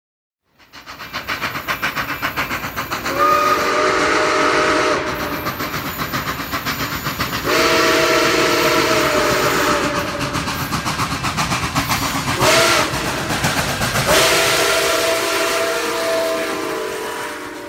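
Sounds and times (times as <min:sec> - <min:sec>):
rumbling rail noise: 0:00.5 - 0:17.6
steam train steam hissing: 0:00.5 - 0:17.6
steam train whistle blowing: 0:03.0 - 0:06.1, 0:07.3 - 0:10.6, 0:12.3 - 0:13.4, 0:14.0 - 0:17.6.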